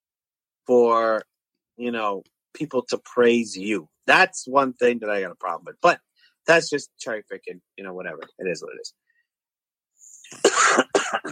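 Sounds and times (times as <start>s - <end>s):
speech: 0.7s - 9.0s, 10.3s - 11.2s
harsh coughs: 10.2s - 11.2s.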